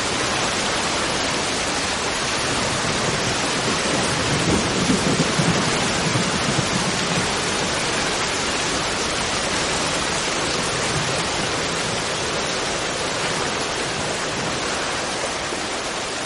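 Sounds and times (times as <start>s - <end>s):
heavy steady rain in a thunderstorm: 0.0s - 16.2s
soft roll of thunder: 2.6s - 14.8s.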